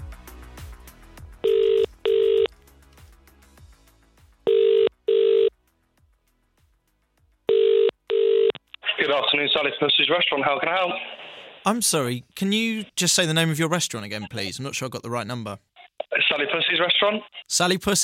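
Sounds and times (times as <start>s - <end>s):
double-pulse ringback tones of an outgoing phone call to a restaurant: 1.4s - 2.5s, 4.5s - 5.5s, 7.5s - 8.6s
speech: 9.2s - 15.7s, 16.3s - 18.0s.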